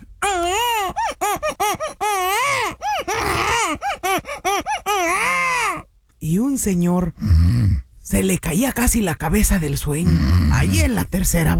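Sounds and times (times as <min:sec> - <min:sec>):
baby crying in a church: 0:00.2 - 0:05.9
speech: 0:06.2 - 0:11.5.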